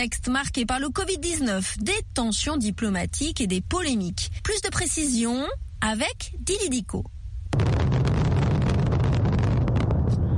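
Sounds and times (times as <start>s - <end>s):
speech: 0.0s - 7.8s
fireworks exploding at stadium opening ceremony: 7.5s - 10.3s
low rumbling roar: 7.5s - 10.3s.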